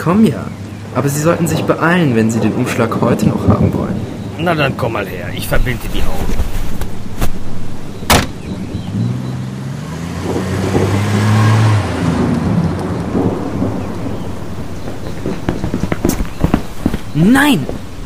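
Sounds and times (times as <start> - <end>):
speech: 0.0 - 6.6, 17.2 - 17.8
car engine rumbling as the vehicle pulls away: 0.0 - 18.0
steady heavy rain: 0.0 - 18.0
sharp cracks: 10.2 - 17.9.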